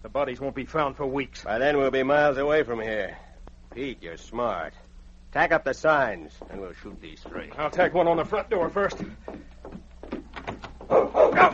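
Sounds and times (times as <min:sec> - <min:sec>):
speech: 0:00.1 - 0:09.8
large dog barking as it charges: 0:10.9 - 0:11.5.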